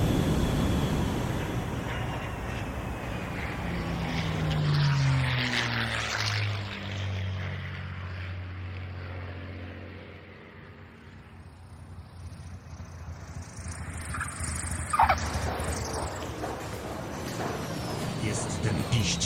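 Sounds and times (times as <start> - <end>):
broad rushing wash of air noise from a passing plane: 0.0 - 4.0
airplane engine roaring as it flies in to land: 0.0 - 19.2.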